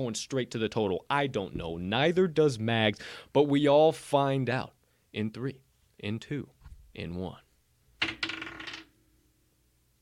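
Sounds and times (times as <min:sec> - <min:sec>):
speech: 0:00.0 - 0:07.4
dice clattering onto a hard surface: 0:08.0 - 0:08.9.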